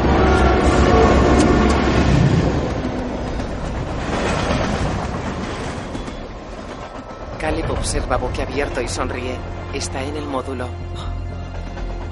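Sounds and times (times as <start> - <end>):
train passing: 0.0 - 12.1
train wagons rattling: 1.8 - 12.1
speech: 7.9 - 11.2.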